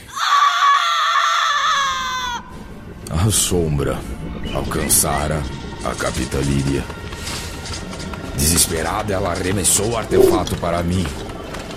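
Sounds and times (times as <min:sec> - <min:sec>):
long piercing scream: 0:00.0 - 0:02.5
speech: 0:03.2 - 0:07.0, 0:08.4 - 0:11.7.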